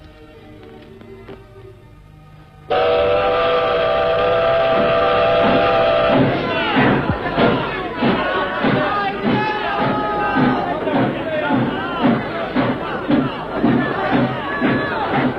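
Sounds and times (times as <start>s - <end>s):
steam train chugging: 2.5s - 15.3s
steam train whistle as train departs: 2.7s - 7.2s.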